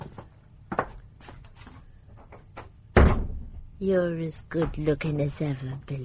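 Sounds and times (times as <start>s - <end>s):
door thudding shut: 3.0s - 3.7s
speech: 3.8s - 6.0s.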